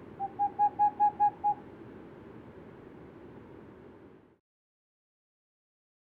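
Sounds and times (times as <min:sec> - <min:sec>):
unpaired male Boreal owl hooting: 0:00.0 - 0:01.6.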